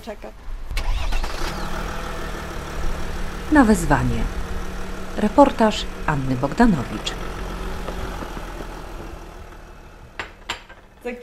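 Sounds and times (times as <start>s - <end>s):
speech: 0.0s - 0.5s, 3.5s - 4.4s, 5.2s - 7.3s, 11.0s - 11.2s
ambulance engine starting as it drives off: 0.6s - 11.2s.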